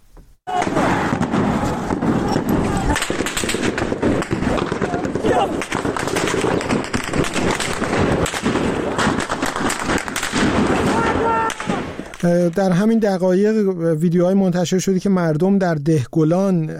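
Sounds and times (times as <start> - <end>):
automatic gunfire bursts: 0.5 - 11.9
speech: 12.2 - 16.7.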